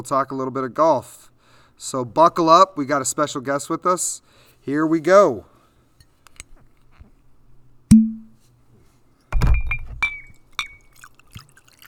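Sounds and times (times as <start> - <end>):
speech: 0.0 - 5.5
drinking glass clink: 7.9 - 8.4, 9.4 - 11.8
liquid gurgling and pouring into a drinking glass: 9.6 - 11.8.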